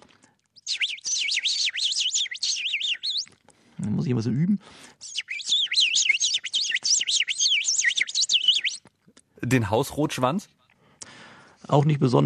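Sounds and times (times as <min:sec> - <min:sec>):
dunnock song with high squeaky hurried twittering: 0:00.5 - 0:08.9
speech: 0:03.8 - 0:04.8, 0:09.5 - 0:10.6, 0:11.7 - 0:12.2.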